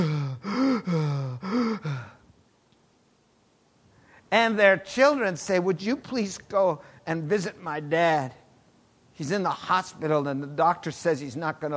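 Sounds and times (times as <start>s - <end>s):
voice imitating labored rasping breathing of a dying person: 0.0s - 2.2s
speech: 4.3s - 8.4s, 9.2s - 11.7s.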